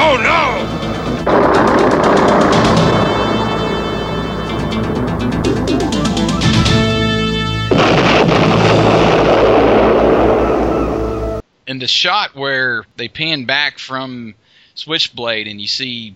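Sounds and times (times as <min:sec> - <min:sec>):
vehicle blowing up in an animated film action scene: 0:00.0 - 0:05.4, 0:07.7 - 0:11.4
tonal music in an animated film action scene: 0:00.0 - 0:11.4
speech: 0:11.9 - 0:16.1.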